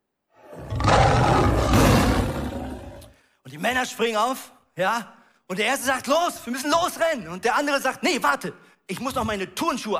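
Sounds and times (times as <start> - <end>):
lion roaring: 0.4 - 3.1
speech: 3.5 - 9.9.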